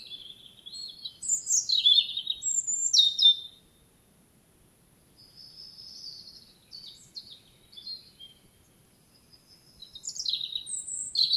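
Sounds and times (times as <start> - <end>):
European robin Erithacus rubecula singing: 0.0 - 3.8, 5.2 - 11.3.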